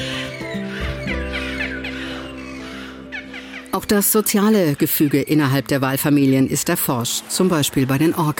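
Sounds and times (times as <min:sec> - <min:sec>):
beluga whale squeaks, rising whistles and cackling chirps: 0:00.0 - 0:03.8
speech: 0:03.8 - 0:08.3.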